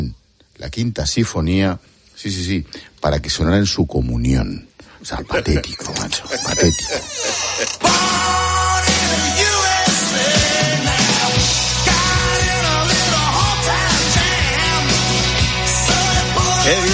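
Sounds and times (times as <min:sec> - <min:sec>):
speech: 0:00.6 - 0:09.4, 0:16.7 - 0:16.9
laughter: 0:05.2 - 0:08.5
loud rock track with distorted guitars and bass: 0:07.7 - 0:16.9.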